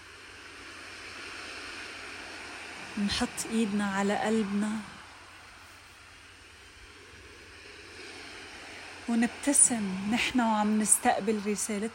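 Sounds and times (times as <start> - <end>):
ocean surf breaking and spreading along the shore: 0.0 - 11.9
speech: 3.0 - 5.0, 9.1 - 11.9.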